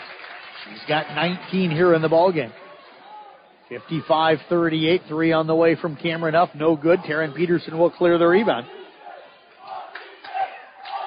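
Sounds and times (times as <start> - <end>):
speech: 0.6 - 2.6, 3.7 - 8.8
large crowd chanting in rhythmic unison at a basketball game: 8.6 - 11.0.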